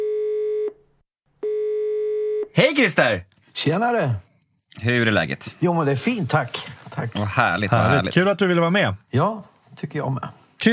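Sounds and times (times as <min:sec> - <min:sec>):
telephone ringback tone while someone places a call: 0:00.0 - 0:00.7, 0:01.4 - 0:02.5
speech: 0:02.6 - 0:10.7.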